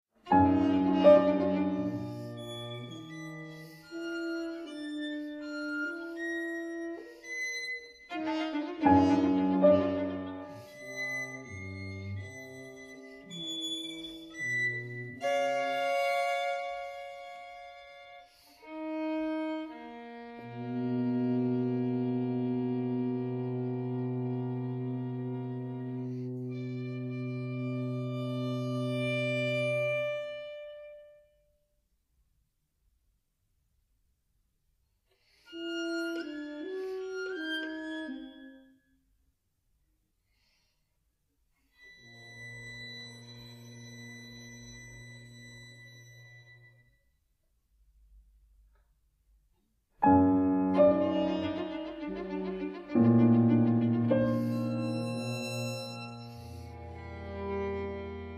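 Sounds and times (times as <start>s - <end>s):
trio for horn violin and piano: 0.2s - 31.3s, 35.3s - 38.6s, 41.7s - 46.8s, 50.0s - 58.3s.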